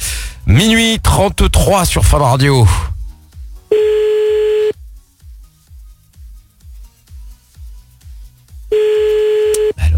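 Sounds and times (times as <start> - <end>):
speech: 0.5 - 2.9
telephone ringback tone of a call being placed: 3.7 - 4.7, 8.7 - 9.7.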